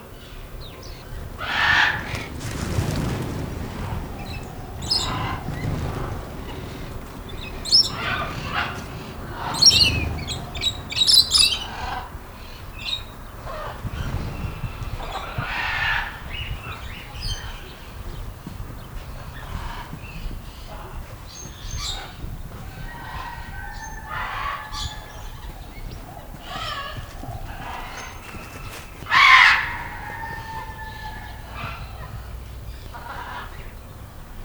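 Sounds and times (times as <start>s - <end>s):
sparrows taking flight at a zoo in Nyíregyháza: 0.2s - 33.7s.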